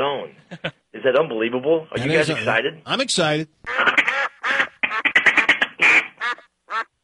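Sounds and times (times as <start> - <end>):
speech: 0.2 - 3.9
ducks quacking on a cloudy autumn day: 3.7 - 6.9.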